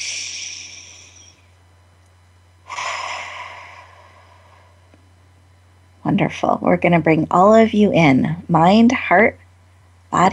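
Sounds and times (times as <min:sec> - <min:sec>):
deep belly breath during a guided relaxation exercise: 0:00.0 - 0:01.4, 0:02.6 - 0:04.9
speech: 0:06.1 - 0:09.4, 0:10.1 - 0:10.3.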